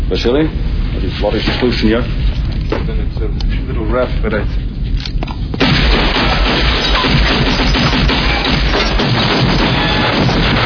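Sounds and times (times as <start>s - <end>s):
speech: 0.1s - 4.6s
gunfire with loud cracks and booms: 5.6s - 10.6s.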